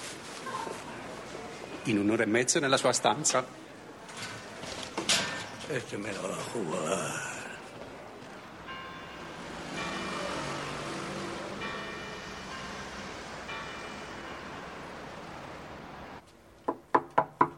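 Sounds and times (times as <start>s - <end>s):
broadband street and traffic noise: 0.0s - 17.5s
speech: 1.8s - 3.7s, 5.7s - 7.3s
knocking on a hotel room door: 16.7s - 17.5s.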